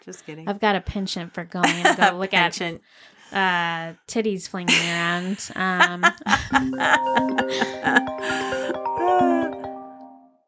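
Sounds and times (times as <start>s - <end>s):
speech: 0.0s - 9.5s
laughter: 1.6s - 2.7s, 4.7s - 9.6s
smartwatch ringing with a bright electronic melody: 6.5s - 10.3s.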